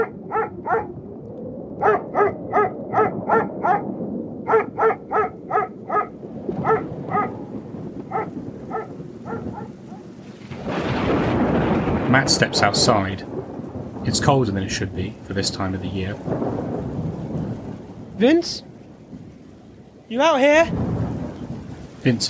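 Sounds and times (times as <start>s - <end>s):
dog barking in a cage in a yard: 0.0s - 0.9s, 1.8s - 7.5s, 8.1s - 10.2s
loud rain-like noise: 4.7s - 22.2s
speech: 12.2s - 13.3s, 14.0s - 16.7s, 18.2s - 18.7s, 20.1s - 20.8s, 22.0s - 22.2s.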